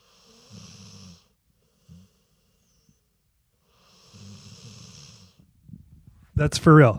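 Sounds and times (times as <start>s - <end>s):
dog snoring: 0.0s - 3.0s, 3.6s - 5.5s
speech: 6.4s - 6.9s.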